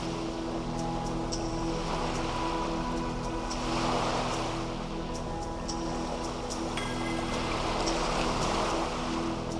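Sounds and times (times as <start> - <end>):
ocean waves washing onto a beach: 0.0 - 9.5.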